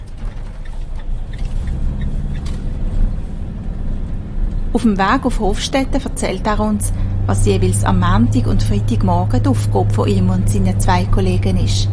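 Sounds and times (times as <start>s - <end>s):
faint rattles of lorry with trailer: 0.0s - 4.8s
heavy zoo lorry with trailer pulling away, engine rumbling: 0.0s - 11.9s
speech: 4.8s - 11.9s.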